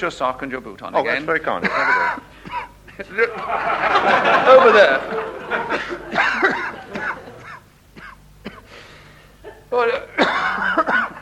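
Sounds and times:
speech: 0:00.0 - 0:06.6, 0:09.7 - 0:10.8
laughter: 0:01.6 - 0:02.3, 0:03.0 - 0:07.7
doctor coughing harshly: 0:01.6 - 0:03.1, 0:05.7 - 0:08.8, 0:09.4 - 0:11.2.

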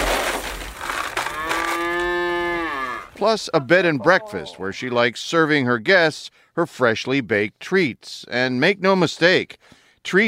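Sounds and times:
cow mooing on a farm: 0:01.2 - 0:03.2
speech: 0:03.2 - 0:10.2.

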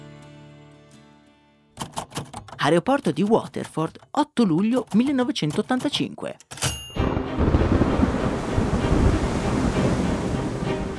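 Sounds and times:
speech: 0:02.6 - 0:06.6
gusting wind at Waterford Airport: 0:07.0 - 0:10.9
heavy rain at Waterford Airport: 0:07.0 - 0:10.9.

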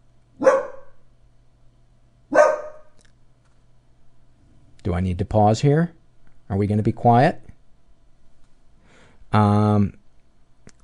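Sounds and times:
dog barking: 0:00.4 - 0:01.0, 0:02.3 - 0:03.0
speech: 0:04.9 - 0:07.4, 0:09.3 - 0:10.0.

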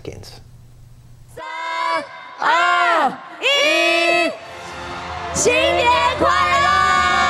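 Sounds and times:
large crowd counting down to midnight on New Year's Eve: 0:01.4 - 0:07.2
large crowd cheering and whooping as fireworks are launched: 0:02.4 - 0:07.2.

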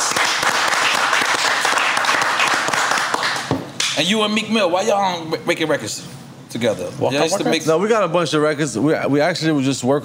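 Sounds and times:
audience applauding: 0:00.0 - 0:04.0
speech: 0:04.0 - 0:10.0.

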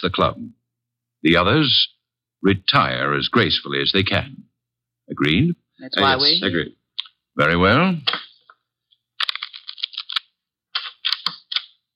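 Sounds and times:
speech: 0:00.0 - 0:00.6, 0:01.2 - 0:04.5, 0:05.1 - 0:06.8, 0:07.4 - 0:08.2
playing cards being shuffled: 0:09.2 - 0:11.8.

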